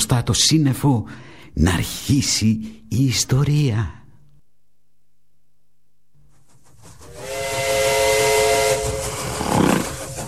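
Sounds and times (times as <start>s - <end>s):
speech: 0.0s - 4.0s
steam train whistle blast: 7.0s - 10.2s.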